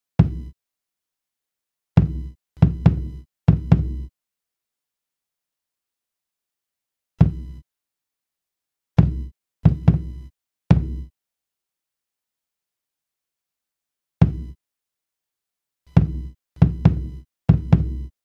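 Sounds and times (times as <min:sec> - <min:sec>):
kick drum: 0:00.2 - 0:00.6, 0:02.0 - 0:04.1, 0:07.2 - 0:07.6, 0:09.0 - 0:11.1, 0:14.2 - 0:14.6, 0:15.9 - 0:18.1.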